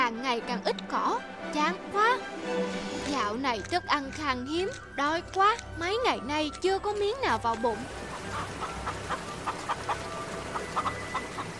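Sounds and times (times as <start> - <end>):
speech: 0.3 - 8.4
flock of chickens clucking: 8.1 - 11.5.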